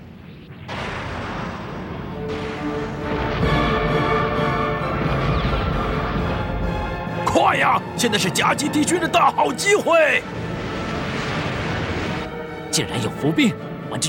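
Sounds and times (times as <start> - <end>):
heavy booming gunfire from space warships in an animated sci-fi fleet battle: 0.5 - 7.2, 10.2 - 12.5
speech: 7.6 - 10.5, 12.8 - 14.0.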